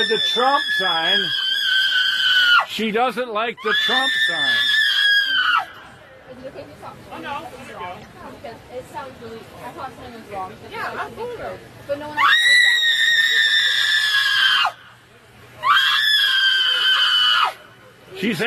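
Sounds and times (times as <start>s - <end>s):
speech: 0.0s - 1.4s, 2.7s - 4.7s, 6.4s - 12.4s, 18.2s - 18.4s
crowd voices and chatter: 0.0s - 2.0s, 2.7s - 18.4s
woman screeching: 0.0s - 2.7s, 3.6s - 5.8s, 12.1s - 14.8s, 15.6s - 17.6s.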